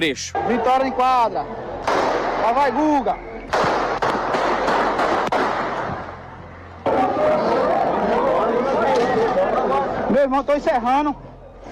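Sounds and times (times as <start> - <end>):
speech: 0.0 - 1.6, 2.4 - 3.6, 10.2 - 11.3
agitated crowd of players and fans shouting: 0.3 - 10.1
gunshots at a sports court in a gymnasium: 1.8 - 2.6, 3.5 - 6.2.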